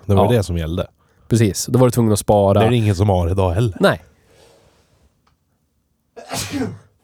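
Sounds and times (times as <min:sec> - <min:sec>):
speech: 0:00.1 - 0:04.1, 0:06.2 - 0:06.8
person sneezing: 0:06.2 - 0:07.0.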